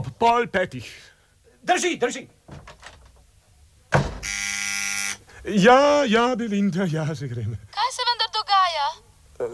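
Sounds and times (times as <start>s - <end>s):
speech: 0.2s - 2.7s, 5.4s - 7.7s
single knock or thump: 3.9s - 4.3s
electric door buzzer at a closed door: 4.0s - 5.2s.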